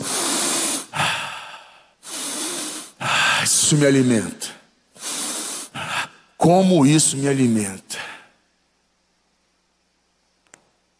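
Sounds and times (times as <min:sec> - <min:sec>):
voice imitating a demon's loud harsh sniffing snorts: 0:02.0 - 0:03.0, 0:05.0 - 0:05.9
speech: 0:03.7 - 0:04.6, 0:06.4 - 0:07.9.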